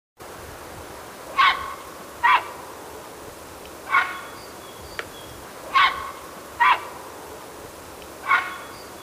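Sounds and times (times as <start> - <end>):
grey heron call: 1.3 - 2.6, 3.9 - 4.4, 5.7 - 7.0, 8.2 - 8.8.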